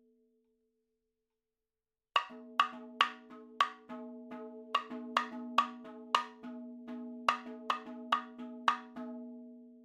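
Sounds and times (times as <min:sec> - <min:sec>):
madhalam percussion fills: 0:02.2 - 0:09.2.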